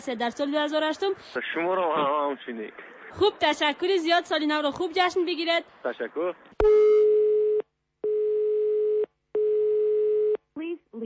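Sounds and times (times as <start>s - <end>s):
speech: 0.0s - 7.0s
buzzy electronic telephone ringback tone: 6.7s - 10.4s.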